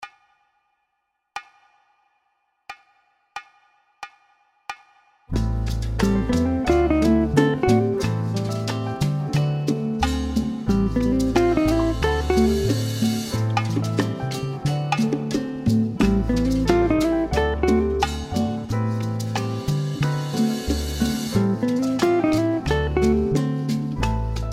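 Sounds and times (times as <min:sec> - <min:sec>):
jazz guitar playing a ii V7 cadence phrase: 0:05.4 - 0:24.5.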